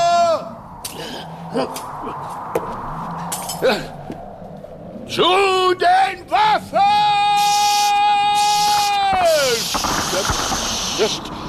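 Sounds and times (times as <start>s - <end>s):
loud sustained shout under a mass of ice: 0.0s - 0.6s, 5.4s - 9.7s
speech: 1.5s - 2.8s, 3.6s - 4.2s, 5.1s - 7.0s, 10.2s - 11.4s.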